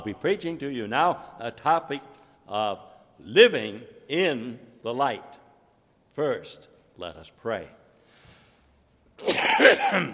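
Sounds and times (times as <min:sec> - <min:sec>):
speech: 0:00.0 - 0:05.4, 0:06.2 - 0:07.8, 0:09.2 - 0:10.1
preacher coughing: 0:09.2 - 0:10.1.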